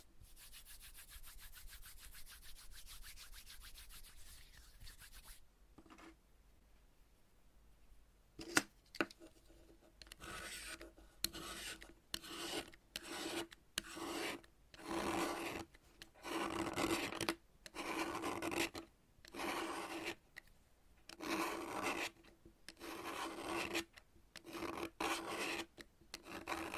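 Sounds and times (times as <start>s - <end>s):
dry scraping of chalk being cut: 0.0s - 5.4s, 10.2s - 17.2s, 17.8s - 20.2s, 21.2s - 22.2s, 22.8s - 26.7s.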